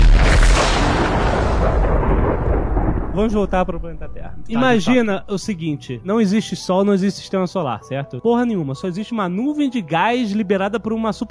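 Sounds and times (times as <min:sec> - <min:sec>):
huge explosion standing in for the Big Bang: 0:00.0 - 0:05.6
speech: 0:03.2 - 0:11.2.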